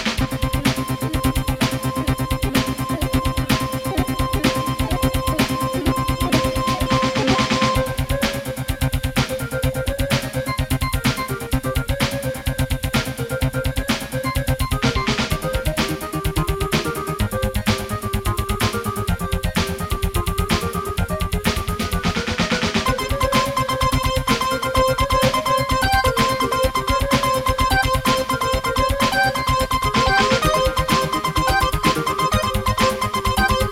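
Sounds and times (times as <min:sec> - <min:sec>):
Casio GZ-50M keyboard intro music: 0:00.2 - 0:33.7.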